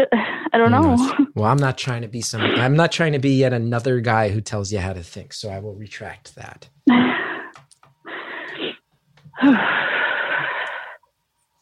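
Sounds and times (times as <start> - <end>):
speech: 0.0 - 7.2, 9.4 - 9.8
heavy laboured human breathing: 7.0 - 11.0.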